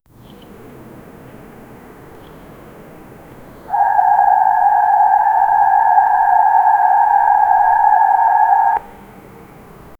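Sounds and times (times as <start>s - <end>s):
megaloceros deer call: 3.7s - 8.8s.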